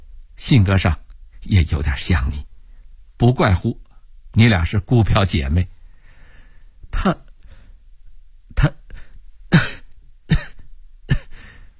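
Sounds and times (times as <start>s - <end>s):
speech: 0.4s - 2.5s, 3.2s - 3.8s, 4.4s - 5.7s, 6.9s - 7.2s
soft dry coughs: 9.5s - 11.6s.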